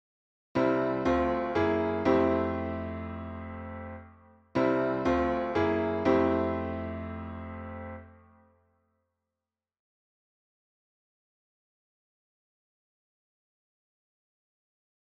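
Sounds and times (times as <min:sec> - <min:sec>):
gospel piano playing a I bV IV progression: 0:00.6 - 0:08.4.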